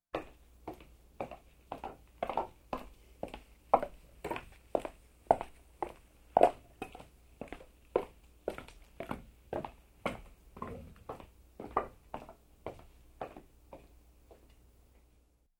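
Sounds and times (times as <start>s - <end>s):
footsteps on a wooden surface: 0.2s - 14.4s.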